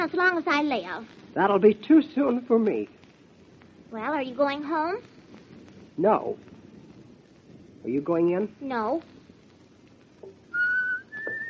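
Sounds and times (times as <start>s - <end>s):
speech: 0.0s - 3.0s, 3.9s - 5.1s, 6.0s - 6.5s, 7.8s - 9.2s
person whistling two sustained high notes: 10.5s - 11.4s.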